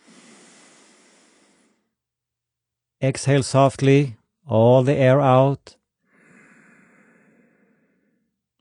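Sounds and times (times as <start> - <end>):
deep inhale into the rib cage during a breathing exercise: 0.0 - 2.0, 6.0 - 8.4
speech: 3.0 - 5.8.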